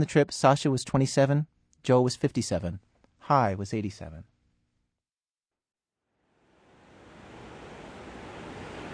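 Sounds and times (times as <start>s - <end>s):
speech: 0.0s - 4.3s
ocean waves roaring: 6.3s - 8.9s.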